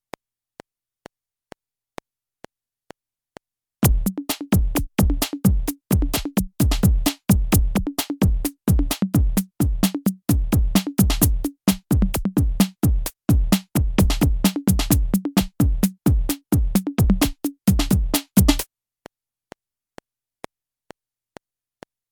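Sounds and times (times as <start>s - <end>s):
dirty beats loop: 3.8s - 18.6s.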